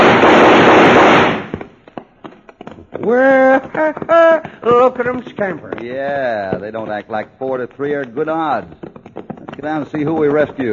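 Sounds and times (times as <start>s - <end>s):
gunshots fired over people's heads in a Western scene: 0.0s - 1.8s
speech: 3.1s - 8.9s, 9.6s - 10.7s.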